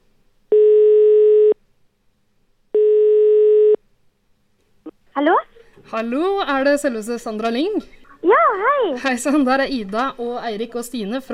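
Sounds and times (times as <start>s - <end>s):
telephone ringing tone while placing a call: 0.5s - 1.6s, 2.8s - 3.8s
speech: 5.2s - 11.3s.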